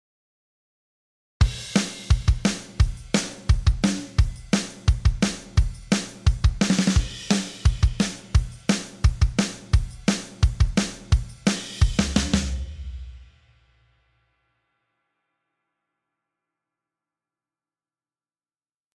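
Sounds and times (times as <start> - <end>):
drum: 1.4 - 13.4.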